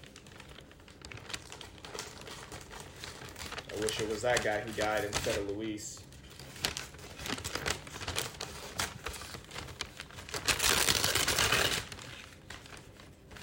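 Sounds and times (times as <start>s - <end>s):
gift wrap paper crinkling and being crumpled while wrapping Christmas presents: 0.0s - 13.4s
speech: 3.8s - 6.1s.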